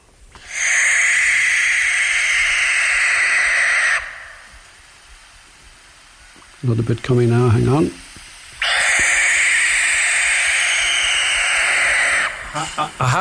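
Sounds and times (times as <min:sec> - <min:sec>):
barn owl hissing screech at night: 0:00.4 - 0:05.1, 0:08.6 - 0:13.2
speech: 0:06.6 - 0:08.0, 0:12.8 - 0:13.2.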